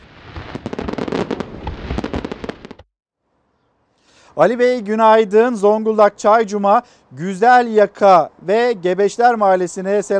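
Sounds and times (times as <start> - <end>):
fireworks crackling and popping at a conquest anniversary festival show: 0.0 - 2.9
quiet noise: 0.0 - 10.1
speech: 4.4 - 10.1.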